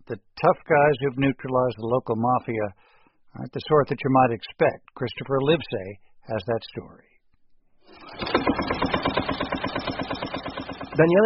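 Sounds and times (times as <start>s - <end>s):
speech: 0.1s - 2.8s, 3.4s - 7.1s, 11.0s - 11.2s
tractor engine starting up and chugging: 8.0s - 11.2s.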